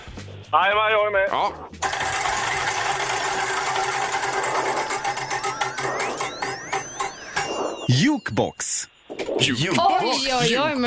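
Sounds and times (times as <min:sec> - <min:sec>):
speech: 0:00.5 - 0:02.7, 0:08.0 - 0:10.8
prize wheel spinning with ratcheting clatter: 0:01.8 - 0:08.4
rising tone: 0:01.9 - 0:08.4.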